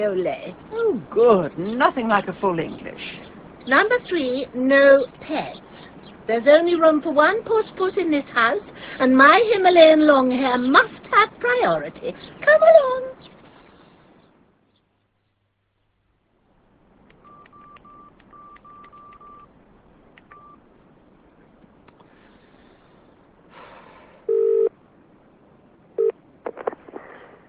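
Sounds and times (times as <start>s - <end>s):
speech: 0.0s - 5.7s, 6.3s - 13.1s
telephone keypad tones beeping: 17.2s - 19.5s, 20.3s - 20.6s.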